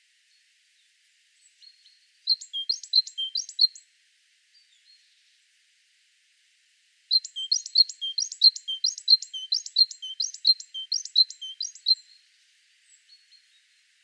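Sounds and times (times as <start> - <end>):
great tit repeating two-part phrases of high chips and lower whistles: 2.3 - 3.8, 7.1 - 12.0.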